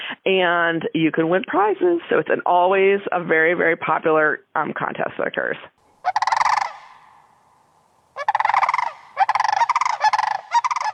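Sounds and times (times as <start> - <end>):
speech: 0.1 - 5.8
Sandhill Crane trumpeting and rattling calls: 5.8 - 10.9.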